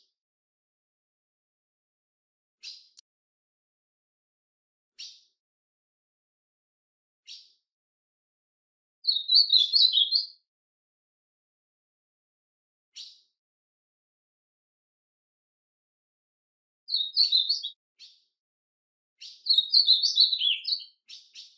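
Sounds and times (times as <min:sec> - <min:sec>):
ultramarine grosbeak brief sweet warbled song phrase: 0:09.0 - 0:10.4, 0:16.9 - 0:17.8, 0:19.2 - 0:21.5.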